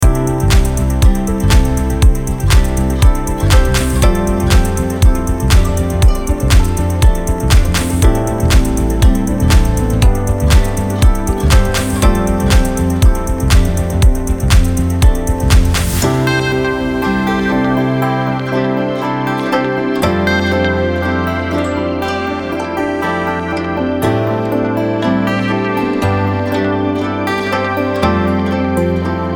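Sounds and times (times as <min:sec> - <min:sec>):
Japanese corporate music loop: 0:00.0 - 0:29.3.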